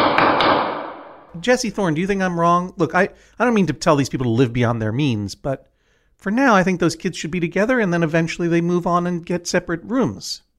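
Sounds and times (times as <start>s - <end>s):
gavel striking wood: 0.0s - 1.3s
loud ring: 0.0s - 1.3s
speech: 1.4s - 10.5s.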